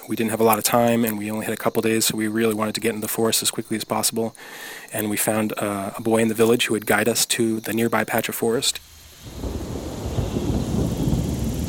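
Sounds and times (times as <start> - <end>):
speech: 0.1 - 9.8
rain falling in a forest: 8.8 - 11.6.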